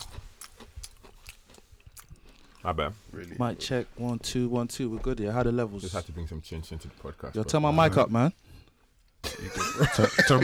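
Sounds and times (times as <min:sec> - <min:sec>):
crunchy food being chewed: 0:00.0 - 0:04.4
speech: 0:02.6 - 0:08.5, 0:09.4 - 0:10.4
laughter: 0:09.2 - 0:10.4.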